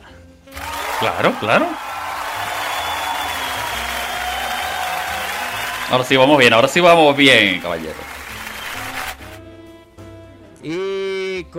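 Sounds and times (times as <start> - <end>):
sizable crowd clapping: 0.5 - 9.4
speech: 1.0 - 1.9, 5.9 - 8.2, 10.6 - 11.5.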